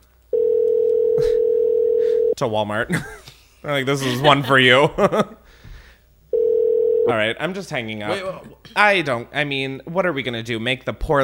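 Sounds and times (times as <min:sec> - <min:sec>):
telephone ringing tone while call is transferred: 0:00.3 - 0:02.4, 0:06.3 - 0:07.1
speech: 0:02.4 - 0:05.5, 0:07.1 - 0:11.2.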